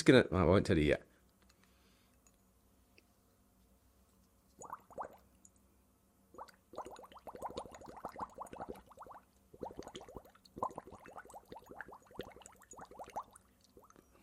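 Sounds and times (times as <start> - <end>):
speech: 0.0 - 1.1
bubbles gurgling through a straw into water in a glass: 4.6 - 5.3, 6.3 - 14.1.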